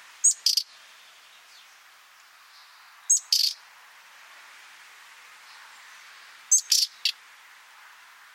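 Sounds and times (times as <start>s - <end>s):
faint steady hiss: 0.0s - 8.3s
common nightingale Luscinia megarhynchos grating calls: 0.2s - 0.7s, 2.6s - 3.6s, 6.5s - 7.2s.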